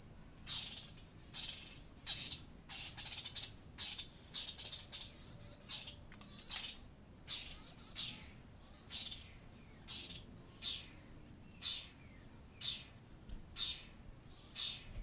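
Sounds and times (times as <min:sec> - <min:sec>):
Garden dormouse Eliomys quercinus calling with sharp very high squeaky chirps: 0:00.2 - 0:15.0.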